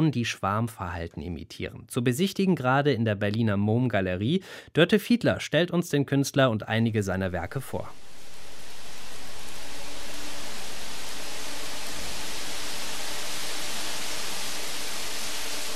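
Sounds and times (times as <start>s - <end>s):
speech: 0.0s - 8.1s
electric fans inflating large foil cushions: 7.8s - 15.7s.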